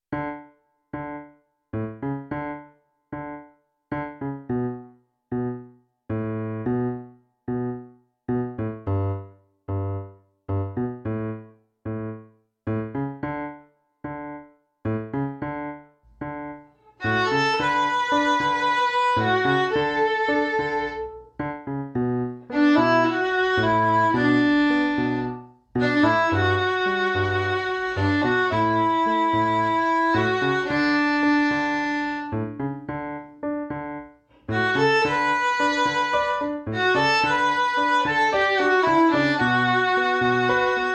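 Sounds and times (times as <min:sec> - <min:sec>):
piano: 0:00.0 - 0:40.9
beginner violin: 0:16.8 - 0:21.5, 0:22.3 - 0:32.6, 0:34.4 - 0:40.9.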